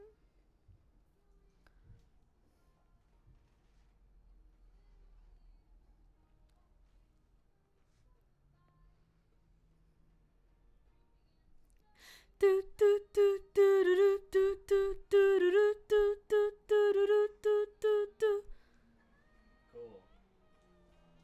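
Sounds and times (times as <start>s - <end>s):
background vocals: 12.1s - 18.6s.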